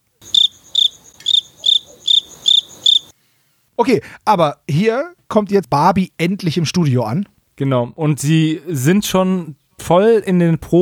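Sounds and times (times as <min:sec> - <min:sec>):
high-pitched cricket chirping: 0:00.2 - 0:03.1
speech: 0:03.8 - 0:10.7.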